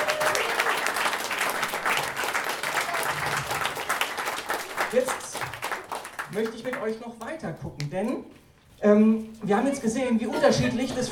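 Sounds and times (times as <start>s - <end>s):
audience applause: 0.0s - 6.9s
speech: 6.3s - 11.0s.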